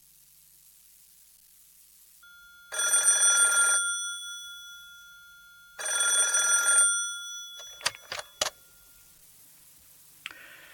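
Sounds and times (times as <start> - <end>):
telephone ringing at a crisis hotline: 2.2 - 9.2
telephone receiver clicks and clatters being picked up: 5.8 - 8.7.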